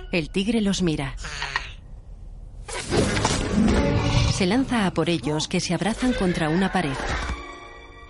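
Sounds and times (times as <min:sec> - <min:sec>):
speech: 0:00.1 - 0:01.3, 0:04.4 - 0:07.3
bone puppet collapsing and breaking apart: 0:02.7 - 0:03.9.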